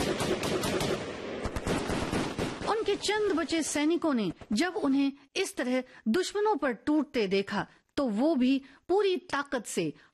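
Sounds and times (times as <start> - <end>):
light machine gun firing bursts in battle: 0.0 - 3.6
speech: 2.9 - 10.1.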